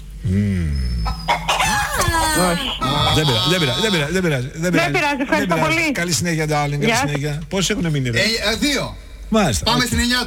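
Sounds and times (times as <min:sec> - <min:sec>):
chicken clucking and squawking: 0:01.1 - 0:04.0
speech: 0:01.3 - 0:01.6, 0:02.3 - 0:10.2.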